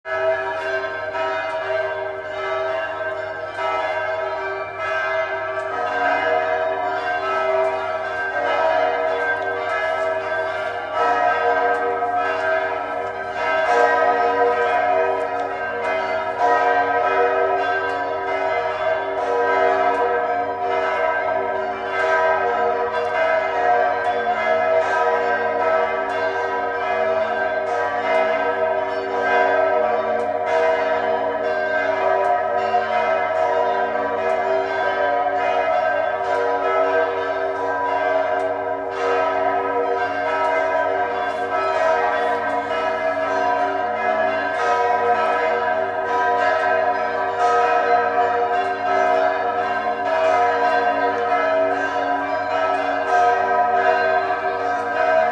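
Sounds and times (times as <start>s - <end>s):
cathedral bells ringing in Freiberg: 0.0s - 55.3s.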